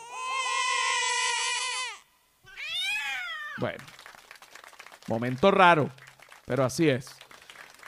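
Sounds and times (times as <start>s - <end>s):
baby crying: 0.0s - 3.6s
speech: 3.6s - 4.0s, 5.1s - 7.2s.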